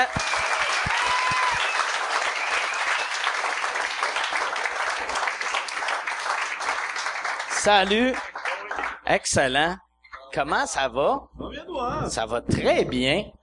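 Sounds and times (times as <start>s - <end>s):
speech: 0.0s - 0.3s, 7.6s - 8.3s, 9.1s - 13.4s
crowd applauding: 0.0s - 9.1s.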